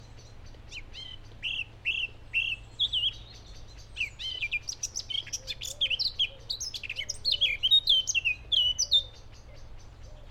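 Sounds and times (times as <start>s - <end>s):
Eurasian blackcap singing: 0.0s - 10.3s.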